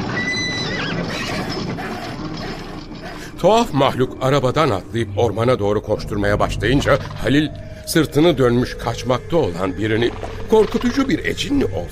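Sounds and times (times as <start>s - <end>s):
carriage horses whinnying and neighing wildly in panic: 0.0s - 3.4s
speech: 3.4s - 11.9s.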